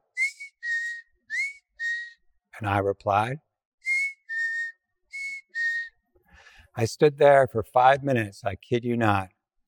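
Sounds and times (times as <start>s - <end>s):
person whistling imitation of a bird's call: 0.0s - 2.4s, 3.8s - 6.0s
speech: 2.6s - 3.5s, 6.8s - 9.4s.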